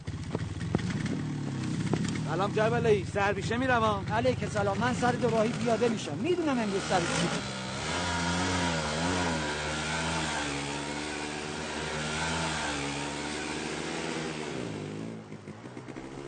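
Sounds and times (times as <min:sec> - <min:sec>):
motorcycle engine revving and pulling away: 0:00.0 - 0:16.2
speech: 0:02.3 - 0:07.6.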